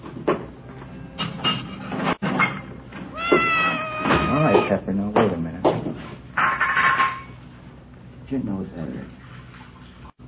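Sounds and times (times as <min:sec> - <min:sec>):
indoor noise: 0:00.0 - 0:10.2
Siamese cat meowing for food: 0:03.1 - 0:04.9
speech: 0:04.7 - 0:05.1.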